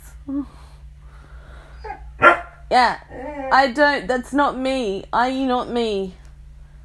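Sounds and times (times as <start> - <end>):
steady low hum: 0.0 - 6.8
speech: 0.3 - 0.8, 2.7 - 6.2
dog barking: 1.9 - 2.6.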